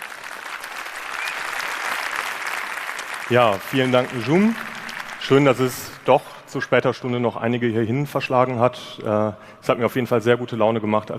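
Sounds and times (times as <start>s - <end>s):
audience applause: 0.0s - 6.5s
speech: 3.3s - 11.1s.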